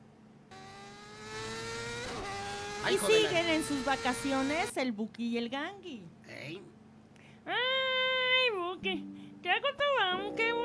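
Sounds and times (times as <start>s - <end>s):
motorcycle engine revving and driving off: 0.5s - 4.7s
speech: 2.8s - 6.8s, 7.4s - 7.8s, 8.6s - 10.6s.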